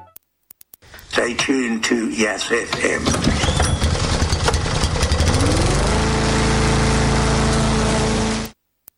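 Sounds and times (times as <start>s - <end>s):
speech: 1.1s - 3.3s
lawn mower sweeper engine running: 2.7s - 8.6s.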